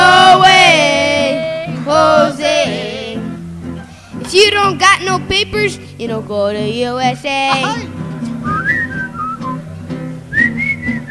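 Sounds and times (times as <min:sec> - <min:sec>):
steady musical backing: 0:00.0 - 0:11.0
speech: 0:04.6 - 0:08.0
person whistling a bouncy little tune: 0:08.4 - 0:09.7, 0:10.3 - 0:11.0.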